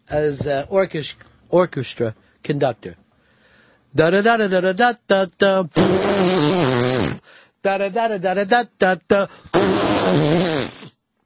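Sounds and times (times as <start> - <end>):
speech: 0.1 - 3.0, 3.9 - 10.8
loud wet sputtering fart noise made with the mouth: 5.8 - 7.2, 9.5 - 11.0.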